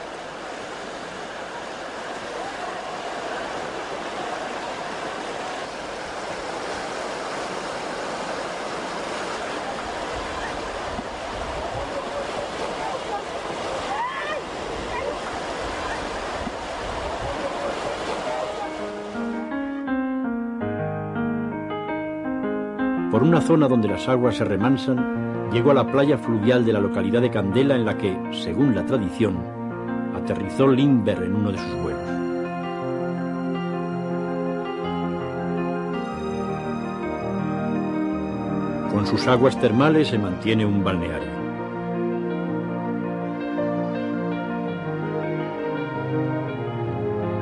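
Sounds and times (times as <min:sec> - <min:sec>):
river rapids used for rafting rushing: 0:00.0 - 0:19.5
gentle sustained musical tones: 0:18.2 - 0:47.4
speech: 0:23.2 - 0:29.6, 0:30.2 - 0:32.2, 0:39.0 - 0:41.4.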